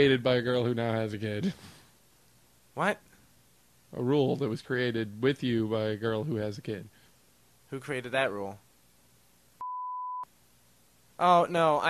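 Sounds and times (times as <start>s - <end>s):
speech: 0.0s - 1.8s, 2.8s - 3.1s, 3.9s - 7.0s, 7.7s - 8.6s, 11.2s - 11.8s
faint hiss: 0.0s - 9.6s, 10.2s - 11.8s
censor bleep tone: 9.6s - 10.3s.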